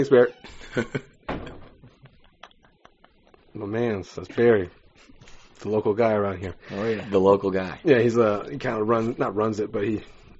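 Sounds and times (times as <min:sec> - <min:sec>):
speech: 0:00.0 - 0:01.2, 0:03.6 - 0:10.2
door swinging open with a knock and rattle: 0:01.2 - 0:02.0.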